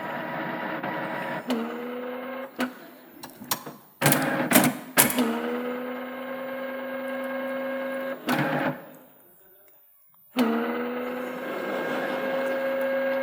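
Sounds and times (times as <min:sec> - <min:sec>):
printer motor whirring while failing to print: 0:00.0 - 0:09.1, 0:10.4 - 0:13.2
printer clunks and clicks: 0:02.6 - 0:05.5, 0:08.2 - 0:08.8
laughter: 0:10.9 - 0:13.2.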